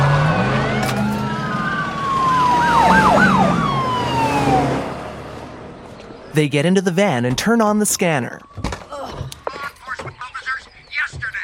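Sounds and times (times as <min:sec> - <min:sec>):
wailing and yelping sirens of sheriff's office vehicles speeding away: 0:00.0 - 0:05.8
speech: 0:06.4 - 0:08.4.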